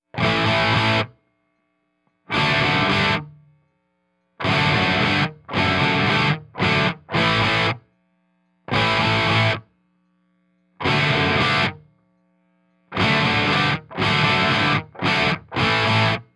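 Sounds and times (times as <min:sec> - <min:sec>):
classic rock music: 0:00.2 - 0:01.1, 0:02.3 - 0:03.2, 0:04.4 - 0:07.8, 0:08.7 - 0:09.6, 0:10.8 - 0:11.8, 0:13.0 - 0:16.2.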